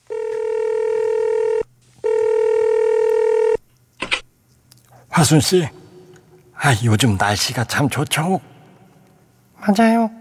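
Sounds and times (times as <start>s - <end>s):
telephone keypad dialing tones: 0.1s - 3.6s
speech: 5.2s - 5.8s, 6.6s - 8.5s, 9.6s - 10.1s.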